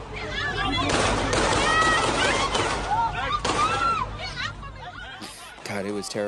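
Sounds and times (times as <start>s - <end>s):
crowd screaming and shouting in panic: 0.0s - 6.2s
sharp gunshots: 0.8s - 3.8s
laughter: 2.2s - 6.2s
speech: 6.0s - 6.2s.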